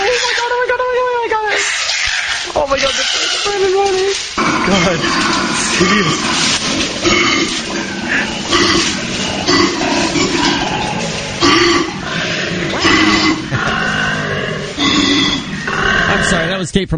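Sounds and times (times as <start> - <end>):
koalas bellowing while fighting: 0.0 - 16.6
koala snorting grunts: 4.4 - 16.5
speech: 16.7 - 16.9.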